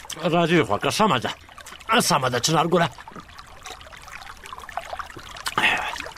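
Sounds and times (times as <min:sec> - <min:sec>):
liquid trickling: 0:00.0 - 0:06.1
speech: 0:00.2 - 0:03.3
sipping a sweet fizzy orange soda: 0:01.8 - 0:06.1.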